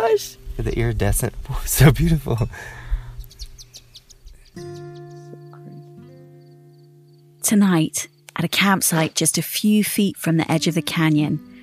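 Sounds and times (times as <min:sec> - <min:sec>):
speech: 0:00.0 - 0:02.8, 0:07.5 - 0:11.5
birds chirping outdoors: 0:01.7 - 0:09.2.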